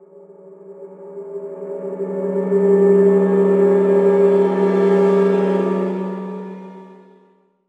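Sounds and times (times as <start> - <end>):
eerie swell: 0.0 - 7.2.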